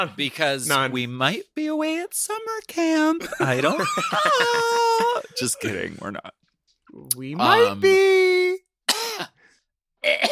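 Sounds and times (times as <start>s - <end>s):
speech: 0.0s - 8.4s, 10.0s - 10.3s
laughter: 3.2s - 5.7s
throaty coughing: 8.9s - 9.4s, 10.0s - 10.3s.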